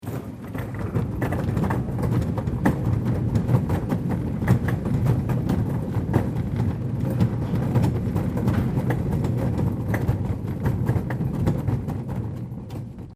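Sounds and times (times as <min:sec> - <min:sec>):
cart being pushed: 0:00.0 - 0:13.1.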